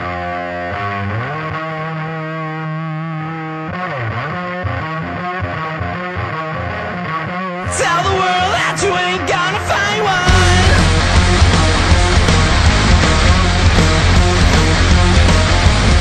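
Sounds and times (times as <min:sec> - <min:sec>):
thick distorted guitars grinding out sustained power chords: 0:00.0 - 0:16.0
steady driving rock beat: 0:07.7 - 0:16.0.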